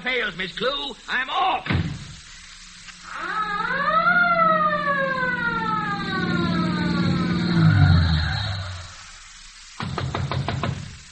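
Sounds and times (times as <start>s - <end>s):
speech: 0.0s - 1.8s
police siren wailing: 3.1s - 9.0s
sharp knocking: 9.8s - 10.9s.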